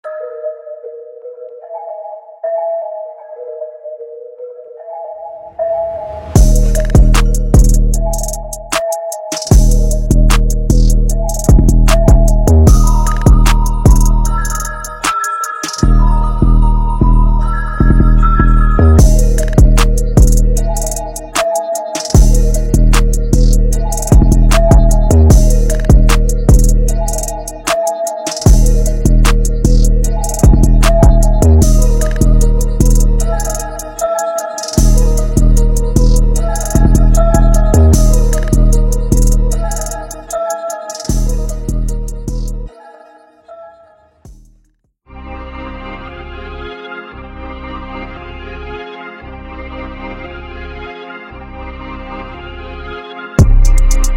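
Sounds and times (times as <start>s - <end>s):
trap melodies with 808 bass: 6.0s - 42.8s, 53.4s - 54.1s.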